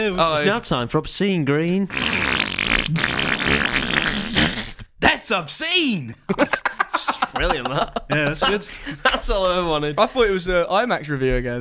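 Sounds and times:
speech: 0:00.0 - 0:04.0, 0:05.3 - 0:11.5
person blowing a raspberry with lips imitating a fart: 0:01.9 - 0:05.0
laughter: 0:06.1 - 0:10.2.

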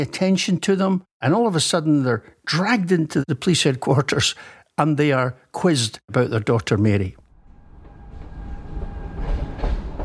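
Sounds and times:
speech: 0:00.0 - 0:07.2
train rumbling along rails: 0:07.4 - 0:10.0.

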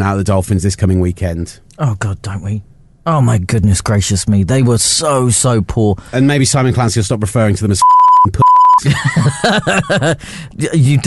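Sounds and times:
speech: 0:00.0 - 0:11.0
censor beep bleeping out a swear word: 0:07.8 - 0:08.8
laughter: 0:08.8 - 0:10.2.

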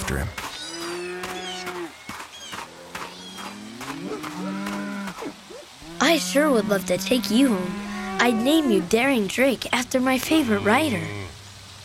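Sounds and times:
speech: 0:00.1 - 0:00.4, 0:06.1 - 0:11.2
grazing cows mooing in a pasture: 0:00.6 - 0:01.9, 0:02.7 - 0:09.3, 0:10.0 - 0:11.4.

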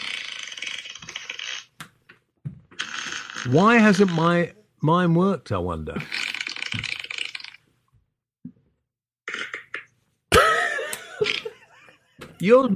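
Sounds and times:
loud raspy fart noises: 0:00.0 - 0:01.8, 0:02.7 - 0:04.2, 0:06.0 - 0:07.7, 0:09.2 - 0:10.0, 0:11.1 - 0:11.7
speech: 0:03.4 - 0:06.9, 0:12.4 - 0:12.7.

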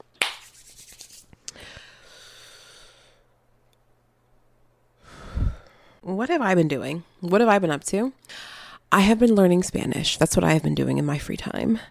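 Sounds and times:
person taking a deep breath: 0:01.5 - 0:03.3, 0:05.0 - 0:06.0
speech: 0:06.1 - 0:11.8.

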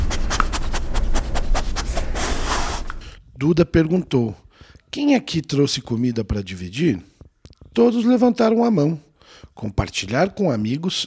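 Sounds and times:
dog sniffing and panting: 0:00.0 - 0:03.1
speech: 0:03.4 - 0:07.1, 0:07.8 - 0:11.0.

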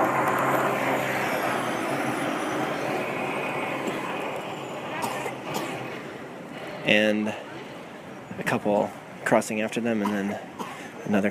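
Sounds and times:
snowplows attached to garbage trucks passing: 0:00.0 - 0:11.1
speech: 0:06.8 - 0:07.4, 0:08.4 - 0:11.3.

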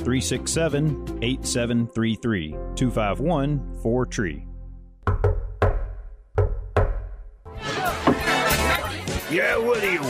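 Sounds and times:
speech: 0:00.0 - 0:04.5, 0:09.3 - 0:10.0
patterned secret knock on a door: 0:05.0 - 0:07.2, 0:08.0 - 0:08.4.

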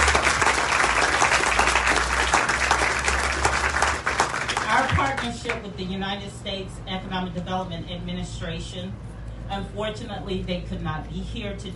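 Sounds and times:
large audience applauding at an event: 0:00.0 - 0:05.3
speech: 0:05.2 - 0:11.7.

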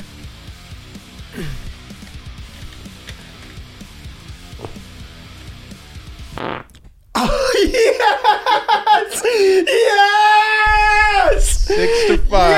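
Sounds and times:
speech: 0:01.4 - 0:01.7
loud drawn-out squeaky fart: 0:06.4 - 0:06.8
laughter: 0:07.2 - 0:10.3, 0:11.3 - 0:12.5.

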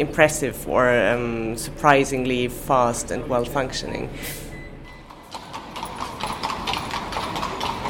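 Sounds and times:
speech: 0:00.0 - 0:04.4
horse hooves of a horse-drawn carriage clip-clopping on pavement: 0:05.1 - 0:07.8.

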